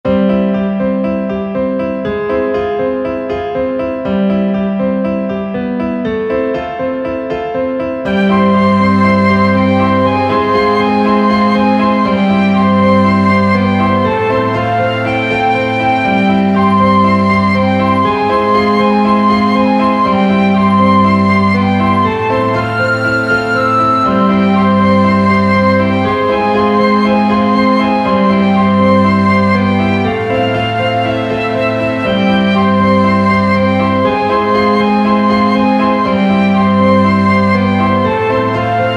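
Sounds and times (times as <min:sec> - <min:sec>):
piano: 0:00.0 - 0:38.9
flute: 0:08.0 - 0:38.9
piccolo: 0:08.1 - 0:38.9
violins: 0:08.1 - 0:38.9.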